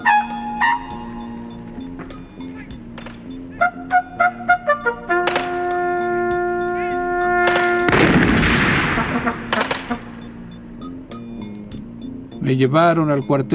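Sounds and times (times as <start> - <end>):
sustained horn-like tones: 0.0 - 12.1
sharp cracks: 2.9 - 3.4, 5.2 - 6.0, 7.3 - 10.5
cannon fire from artillerymen: 7.4 - 10.3
speech: 12.5 - 13.5.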